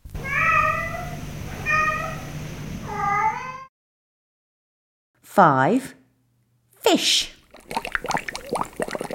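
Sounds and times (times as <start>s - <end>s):
cat meowing: 0.2s - 2.3s
speech: 5.4s - 6.0s, 6.9s - 8.2s.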